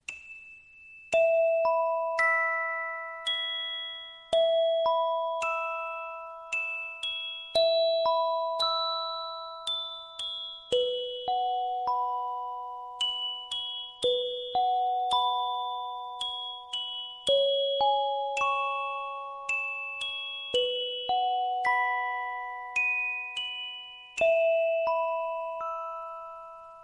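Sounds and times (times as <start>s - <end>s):
music box playing: 0.0s - 26.8s.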